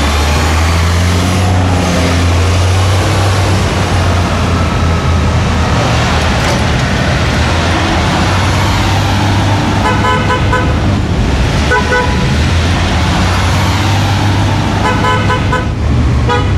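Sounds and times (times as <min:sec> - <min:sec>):
steady rumble of street traffic and engines in a busy town: 0:00.0 - 0:16.5
short car horn honks in a town: 0:09.8 - 0:10.8, 0:11.7 - 0:12.3, 0:14.8 - 0:16.5.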